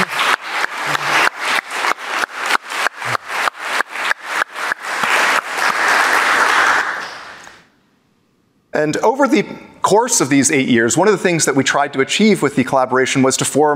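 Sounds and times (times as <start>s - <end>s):
audience applause: 0.0s - 7.6s
speech: 8.8s - 13.7s.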